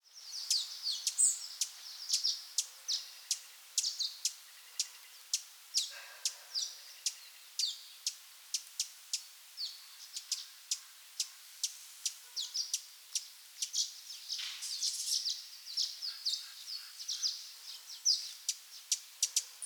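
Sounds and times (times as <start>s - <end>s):
Rufous Hummingbird: 0.2s - 19.6s.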